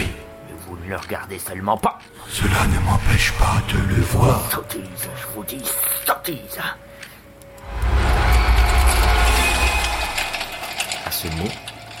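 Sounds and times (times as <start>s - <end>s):
speech: 0.9s - 6.9s, 11.2s - 11.7s
heavy chain being shaken and rattled: 8.4s - 11.9s.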